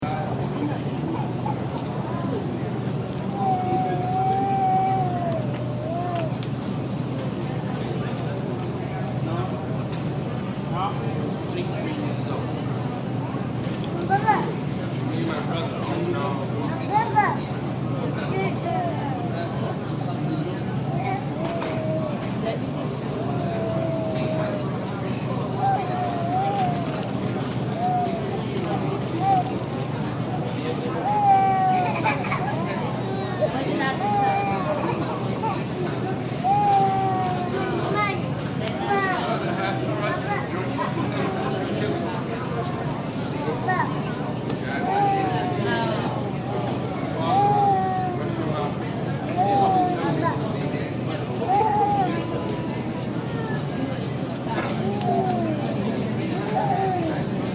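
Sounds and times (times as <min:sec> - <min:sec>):
people talking on the Staten Island Ferry: 0:00.0 - 0:57.5
babies babbling on the Staten Island Ferry: 0:01.2 - 0:06.5, 0:14.1 - 0:14.6, 0:16.9 - 0:17.5, 0:18.2 - 0:19.8, 0:20.8 - 0:30.0, 0:30.9 - 0:57.5.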